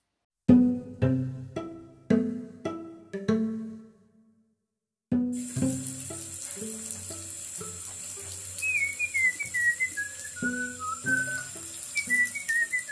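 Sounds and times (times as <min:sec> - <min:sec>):
plucked ringing musical notes: 0:00.5 - 0:04.2, 0:05.1 - 0:09.1, 0:09.8 - 0:12.8
cold water gushing from a tap: 0:05.4 - 0:12.8.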